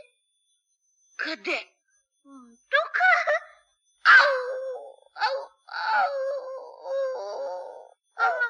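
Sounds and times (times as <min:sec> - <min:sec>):
speech: 0:01.3 - 0:01.7
high whining cries: 0:04.0 - 0:08.4.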